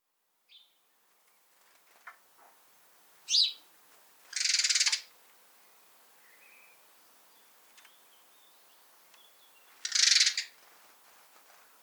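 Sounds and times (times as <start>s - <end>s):
house sparrow Passer domesticus chirping: 3.3s - 3.6s, 4.3s - 5.1s, 7.4s - 10.5s.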